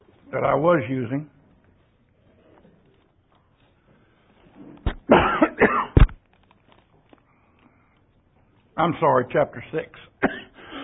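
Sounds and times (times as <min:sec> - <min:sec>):
speech: 0:00.3 - 0:01.4, 0:08.8 - 0:10.3
person coughing: 0:04.9 - 0:06.2, 0:10.2 - 0:10.8.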